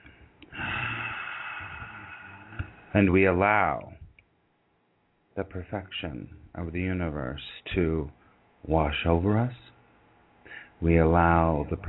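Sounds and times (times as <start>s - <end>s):
deep breath drawn in through the nose: 0.0s - 2.9s, 10.4s - 10.8s
speech: 2.9s - 3.9s, 5.4s - 9.6s, 10.8s - 11.8s.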